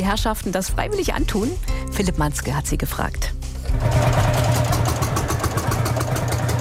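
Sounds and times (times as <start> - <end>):
speech: 0.0 - 4.2
old tractor engines chugging and rattling: 3.7 - 6.5.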